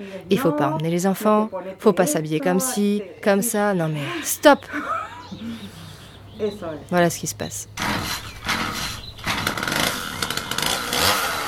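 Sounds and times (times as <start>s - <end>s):
speech: 0.0s - 5.0s, 6.4s - 8.2s
chainsaw engine revving: 7.8s - 11.4s.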